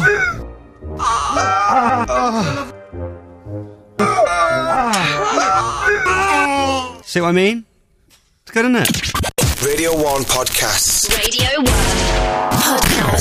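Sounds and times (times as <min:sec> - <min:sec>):
man wailing in pain while having his legs waxed: 0:00.0 - 0:00.4, 0:01.0 - 0:02.8, 0:04.0 - 0:07.1
speech: 0:07.1 - 0:07.7, 0:08.5 - 0:13.1.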